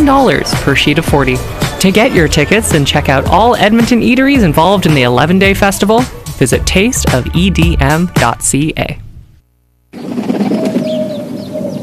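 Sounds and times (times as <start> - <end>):
speech: 0.0 - 9.0
pigeon cooing: 10.0 - 11.8
small birds chirping: 10.0 - 11.8.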